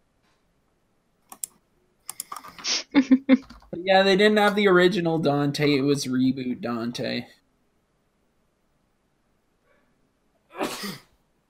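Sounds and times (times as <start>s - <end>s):
speech: 3.0s - 7.4s
sneeze: 10.5s - 11.2s.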